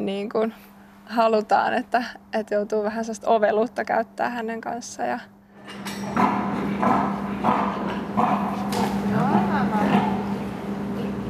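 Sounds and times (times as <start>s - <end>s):
speech: 0.0s - 6.2s, 6.8s - 10.1s
constant low mechanical hum: 0.0s - 11.2s
sow grunting and snorting: 6.1s - 10.3s.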